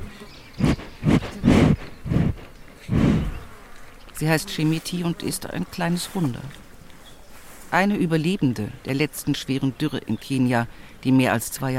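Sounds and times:
cow sniffing at a microphone: 0.0s - 3.5s
speech: 4.2s - 6.6s, 7.7s - 11.7s.

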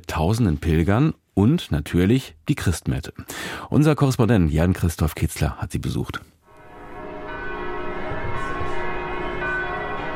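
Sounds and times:
speech: 0.1s - 6.4s
church bells pealing festively: 6.5s - 10.1s.

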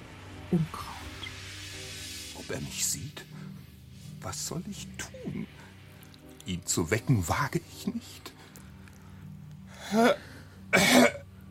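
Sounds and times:
speech: 0.5s - 0.9s, 2.5s - 3.6s, 4.2s - 5.7s, 6.4s - 8.4s, 9.9s - 10.3s
throat clearing: 10.7s - 11.2s.

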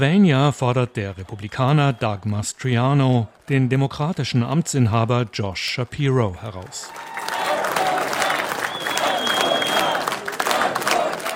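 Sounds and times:
speech: 0.0s - 7.3s
clapping: 6.6s - 11.3s
large crowd chanting and cheering at a rally: 6.6s - 11.3s
raised voices: 7.0s - 11.3s.

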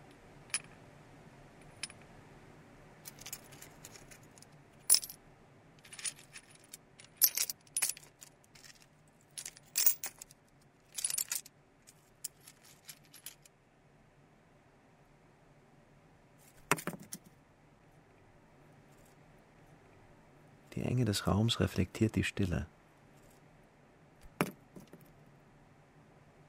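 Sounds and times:
low steady hum: 0.0s - 26.4s
old coins clinking in a hospital kitchen chimney shaft: 3.1s - 5.2s, 5.8s - 11.5s, 12.2s - 13.5s
speech: 20.9s - 22.8s.

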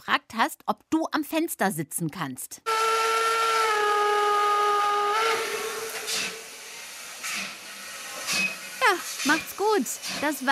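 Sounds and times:
speech: 0.1s - 2.8s, 8.9s - 10.4s
steam train whistle multi-toned blast as train departs: 2.7s - 7.1s
hissing steam as the steam engine pulls away: 2.7s - 10.4s.

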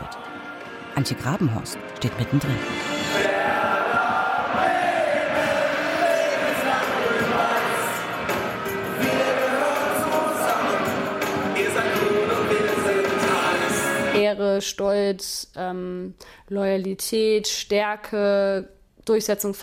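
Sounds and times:
speech: 1.0s - 3.3s, 14.6s - 19.6s
dense standing crowd of football ultras chanting in unison: 3.0s - 14.2s
football ultras clapping: 3.2s - 12.3s.

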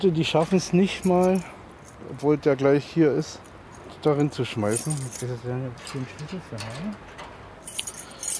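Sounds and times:
speech: 0.0s - 7.2s
keys jangling as a household waste container key is fetched: 1.0s - 2.0s, 4.6s - 8.3s.

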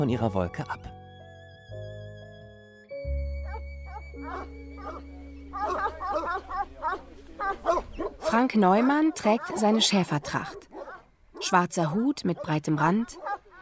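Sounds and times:
speech: 0.0s - 1.0s, 7.5s - 10.7s, 11.4s - 13.3s
steady musical backdrop: 0.0s - 10.6s
dog barking among grazing sheep: 3.4s - 11.6s, 12.2s - 13.6s.

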